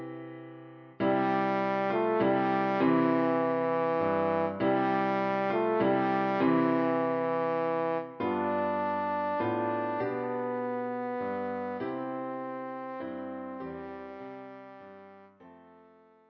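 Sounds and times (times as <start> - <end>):
horn playing a Christmas carol: 1.0 - 16.0.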